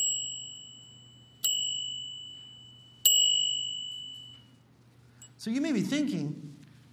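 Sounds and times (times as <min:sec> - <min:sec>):
temple bell struck: 0:00.0 - 0:05.4
speech: 0:05.4 - 0:06.9.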